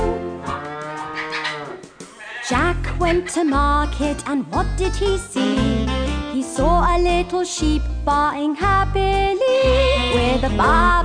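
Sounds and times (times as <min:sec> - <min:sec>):
cow mooing: 0:00.0 - 0:02.6
speech: 0:02.5 - 0:05.7, 0:06.4 - 0:11.0.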